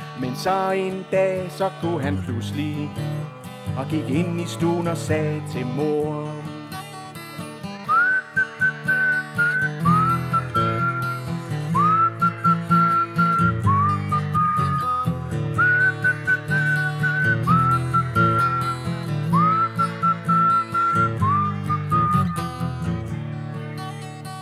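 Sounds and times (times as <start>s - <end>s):
musical accompaniment: 0.0s - 23.5s
speech: 0.2s - 6.5s
person whistling a tune in a children's song: 7.8s - 22.9s.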